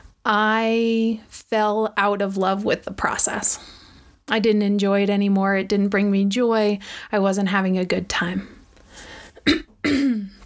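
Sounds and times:
speech: 0.2s - 8.6s, 9.4s - 10.1s
raspy throaty cough: 9.4s - 10.4s.

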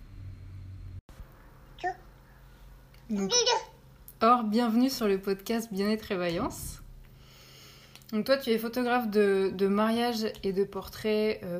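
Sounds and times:
baby babbling during an interview: 1.8s - 2.1s, 3.1s - 3.8s
speech: 1.8s - 2.1s, 3.1s - 6.8s, 8.1s - 11.5s.

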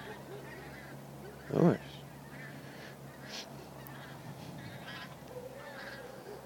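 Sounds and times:
small group of geese honking while flying overhead: 0.0s - 6.4s
steady low outdoor rumble: 0.0s - 6.4s
speech: 1.5s - 1.9s.

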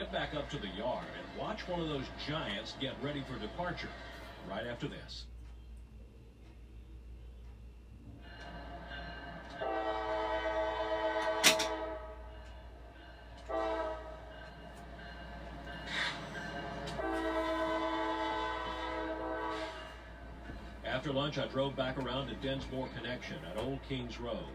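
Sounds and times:
intermodal freight train rumbling past: 0.0s - 5.4s, 6.0s - 24.5s
speech: 0.4s - 5.3s, 21.4s - 24.5s
freight train horn blasts: 9.4s - 20.6s.

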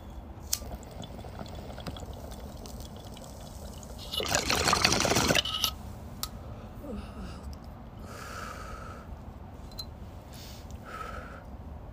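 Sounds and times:
bubbling water from a bong hit: 0.4s - 5.7s
person drinking and swallowing water: 0.6s - 5.5s.

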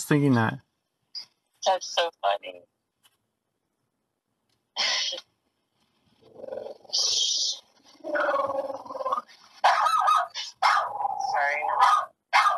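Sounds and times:
speech: 0.0s - 0.7s, 1.6s - 2.7s, 6.4s - 9.8s
dog growling at a delivery person: 8.0s - 9.3s, 10.7s - 11.9s
dog barking at a delivery person: 9.6s - 11.1s, 11.7s - 12.5s.

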